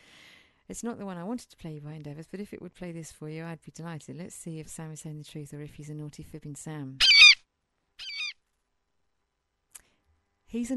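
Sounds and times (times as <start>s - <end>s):
speech: 0.7s - 7.2s, 10.5s - 10.7s
eagle cry sound effect: 7.0s - 7.4s, 8.0s - 8.4s
faint click: 9.7s - 10.0s.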